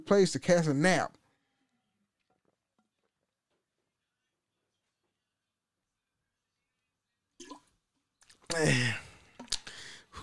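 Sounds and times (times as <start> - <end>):
speech: 0.1 - 1.2, 8.5 - 9.0
person gulping water: 7.4 - 9.8.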